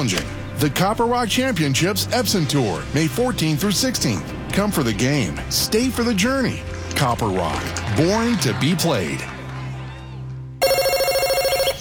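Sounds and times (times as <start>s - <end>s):
speech: 0.0s - 9.3s
telephone ringing with a warbling trill: 10.6s - 11.7s.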